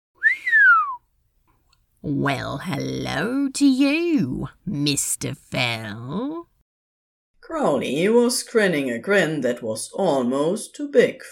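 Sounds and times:
impressed whistle: 0.2s - 1.0s
speech: 2.0s - 6.5s, 7.4s - 11.3s.

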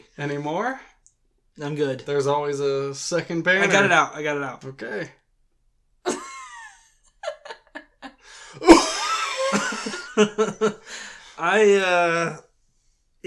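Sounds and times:
speech: 0.2s - 0.9s, 1.6s - 5.2s, 10.2s - 12.5s
laughter: 6.1s - 10.9s
sharp cough with a rough breathy tail: 8.6s - 9.9s.

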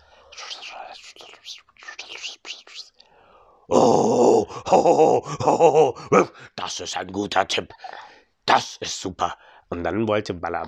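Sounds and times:
person whispering into another person's ear: 0.0s - 3.0s
speech: 0.9s - 2.8s, 3.7s - 10.6s.

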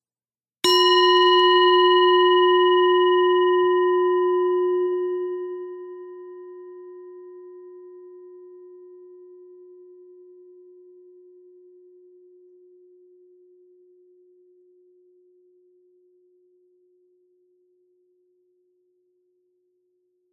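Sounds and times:
singing bowl struck and ringing: 0.7s - 8.7s.

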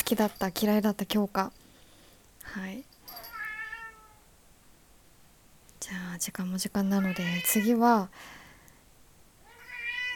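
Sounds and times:
speech: 0.1s - 1.6s, 2.5s - 3.2s, 5.8s - 8.4s
cat meowing: 3.2s - 4.3s, 9.4s - 10.1s.

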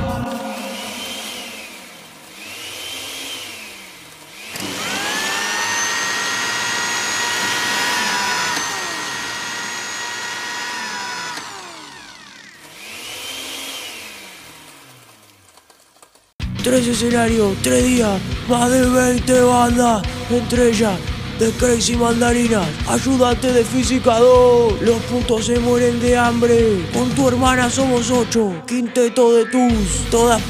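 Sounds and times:
blender motor running: 0.7s - 16.0s
speech: 16.6s - 30.4s.

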